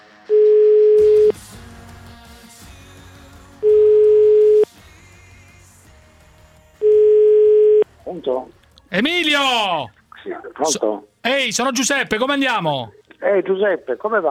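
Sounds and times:
telephone dial tone beeps while placing a call: 0.3s - 1.3s, 3.7s - 4.7s, 6.8s - 7.8s
speech: 8.2s - 14.2s.

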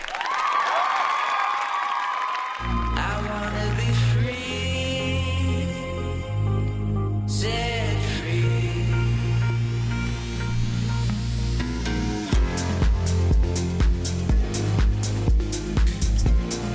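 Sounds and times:
lively crowd applause: 0.0s - 4.2s
loud music jingle with deep sustained tones: 2.7s - 16.7s.

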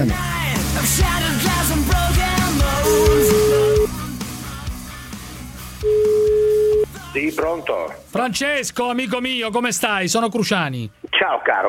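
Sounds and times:
busy music and noise: 0.0s - 11.6s
long steady phone ringback beeps: 2.9s - 3.9s, 5.8s - 6.9s
speech: 7.2s - 11.6s.

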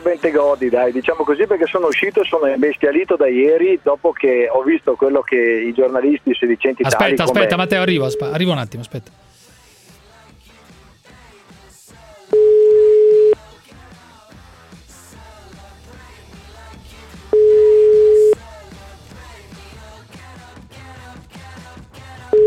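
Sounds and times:
speech: 0.0s - 9.3s
busy continuous din: 6.8s - 9.0s
ringback tone of a dialled telephone number going unanswered: 6.9s - 8.6s, 12.3s - 13.4s, 17.3s - 18.4s.

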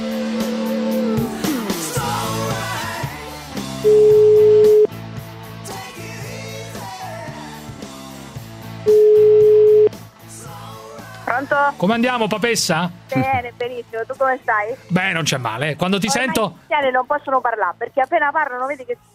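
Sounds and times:
music: 0.0s - 19.1s
telephone tone while placing a call: 3.8s - 4.9s, 8.9s - 9.9s
speech: 11.8s - 19.1s.

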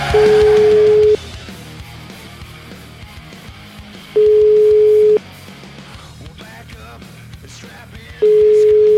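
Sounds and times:
phone call ringback tone beeps: 0.1s - 1.2s, 4.2s - 5.2s, 8.2s - 8.9s.

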